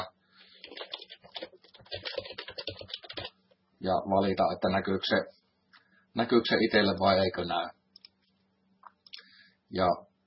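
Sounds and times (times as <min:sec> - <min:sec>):
rapid typing on a computer keyboard: 0:00.6 - 0:03.4
speech: 0:03.8 - 0:05.4, 0:06.1 - 0:07.8, 0:09.7 - 0:10.1.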